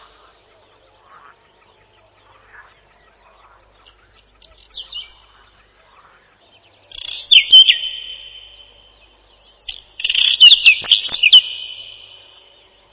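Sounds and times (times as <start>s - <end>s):
Whinchat singing scratchy phrases and a long ringing whistle: 6.9s - 12.9s.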